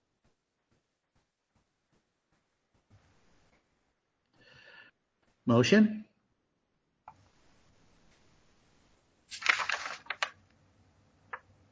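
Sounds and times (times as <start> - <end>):
speech: 5.5 - 6.0
paper rustling and crinkling beside a sensitive microphone at a meeting: 9.3 - 10.5.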